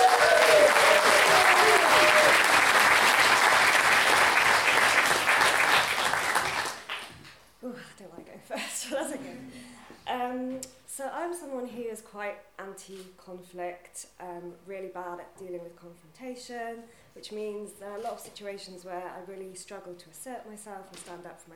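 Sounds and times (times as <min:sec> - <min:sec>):
audience applause at a live storytelling event: 0:00.0 - 0:07.2
speech: 0:12.3 - 0:21.5.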